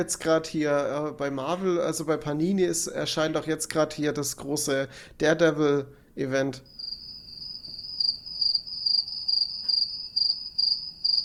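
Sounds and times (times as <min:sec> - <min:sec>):
speech: 0:00.0 - 0:06.8
cricket chirping sound effect: 0:06.7 - 0:11.2.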